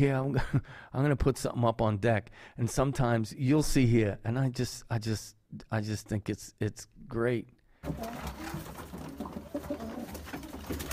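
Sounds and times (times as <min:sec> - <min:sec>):
speech: 0:00.0 - 0:08.7
pigeons cooing: 0:07.9 - 0:10.9.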